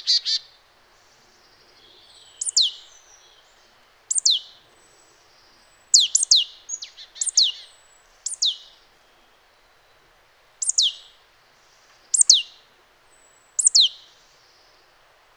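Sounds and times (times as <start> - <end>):
marsh tit Poecile palustris calling: 2.4 - 2.9, 4.1 - 4.6, 5.9 - 7.6, 8.2 - 8.6, 10.6 - 11.0, 12.1 - 12.5, 13.6 - 14.0.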